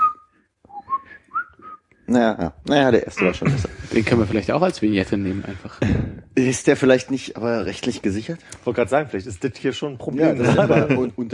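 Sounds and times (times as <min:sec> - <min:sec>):
person whistling a bright ringtone melody: 0:00.0 - 0:01.9
speech: 0:02.1 - 0:11.3
laughter: 0:03.1 - 0:04.4, 0:10.2 - 0:11.3.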